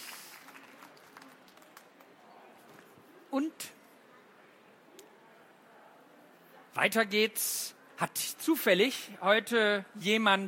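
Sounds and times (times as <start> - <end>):
audience clapping: 0.0 - 2.2
murmur of crowd: 0.0 - 10.4
speech: 3.3 - 3.8, 6.8 - 10.4.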